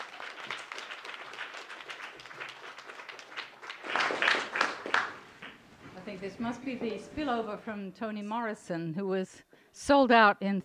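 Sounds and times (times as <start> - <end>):
audience applause welcoming musicians: 0.0 - 5.6
speech: 6.2 - 10.6.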